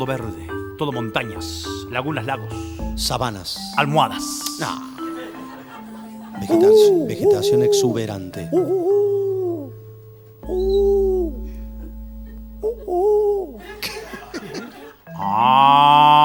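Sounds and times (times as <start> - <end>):
speech: 0.0 - 5.0, 6.4 - 9.2
laughter: 4.7 - 9.7, 10.6 - 15.5
African cow mooing in a savanna scene: 15.2 - 16.2.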